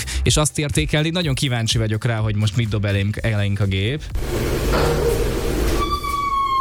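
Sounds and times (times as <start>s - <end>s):
speech: 0.2s - 5.2s
door creaking open: 4.2s - 6.5s.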